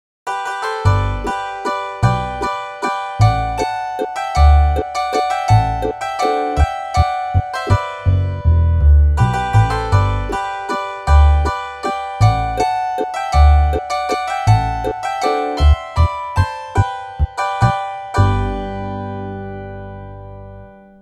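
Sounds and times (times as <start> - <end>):
hammered dulcimer struck hard and ringing out: 0.3 - 19.9
harp chords: 0.3 - 20.9
double bass: 0.9 - 1.4, 2.0 - 2.5, 3.2 - 3.7, 4.4 - 4.8, 5.5 - 5.9, 7.0 - 10.5, 11.1 - 11.5, 12.2 - 12.7, 13.4 - 13.8, 14.5 - 15.0, 18.2 - 20.8.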